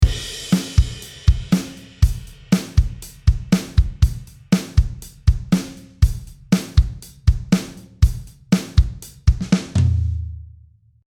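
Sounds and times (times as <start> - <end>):
drum solo: 0.0 - 10.4.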